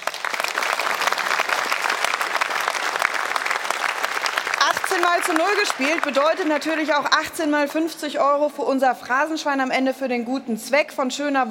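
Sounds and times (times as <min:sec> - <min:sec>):
sustained applause from a sizable crowd: 0:00.0 - 0:07.3
speech: 0:05.0 - 0:11.5.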